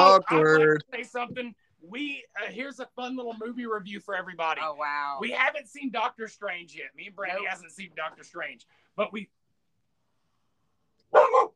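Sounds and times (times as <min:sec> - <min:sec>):
speech: 0:00.2 - 0:09.4
scared dog barking: 0:11.1 - 0:11.5.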